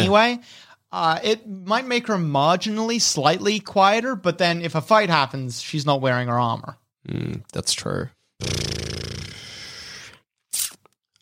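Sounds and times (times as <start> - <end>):
speech: 0.0 - 9.0
creature snoring with rasping breaths: 7.1 - 7.4, 8.4 - 10.2.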